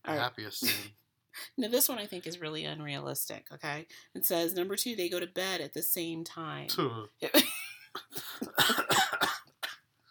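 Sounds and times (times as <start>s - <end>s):
speech: 0.1s - 8.8s
harsh rasping hoarse coughs: 8.2s - 9.8s.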